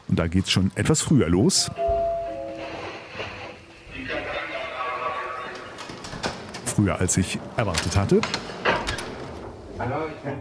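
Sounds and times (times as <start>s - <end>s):
speech: 0.1s - 2.0s, 6.8s - 8.6s, 9.8s - 10.3s
voices: 3.2s - 8.4s
heavy prison cell door clanking and sliding open: 7.8s - 9.6s.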